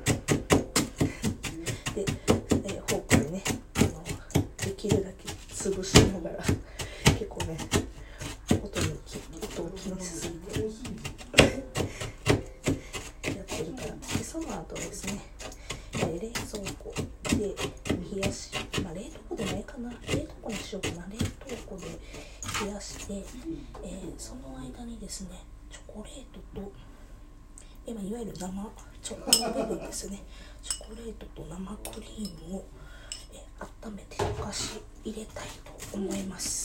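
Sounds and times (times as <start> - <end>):
fork pressing and mixing crushed biscuits with butter: 1.0 - 23.4, 34.7 - 36.6
speech: 28.1 - 32.8, 33.6 - 36.6.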